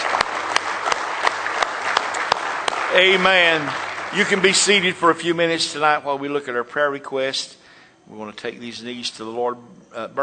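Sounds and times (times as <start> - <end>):
sharp hand claps of praise: 0.0 - 4.7
church congregation applauding during a service: 0.0 - 6.0
speech: 2.9 - 10.2.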